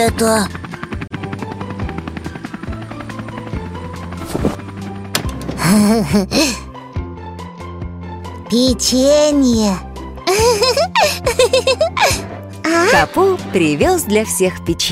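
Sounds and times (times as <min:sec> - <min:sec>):
speech: 0:00.0 - 0:00.6, 0:05.7 - 0:06.6, 0:08.5 - 0:14.9
helicopter flying overhead with rapid rotor chop: 0:00.0 - 0:05.7, 0:12.6 - 0:14.9
laughter: 0:10.3 - 0:12.2.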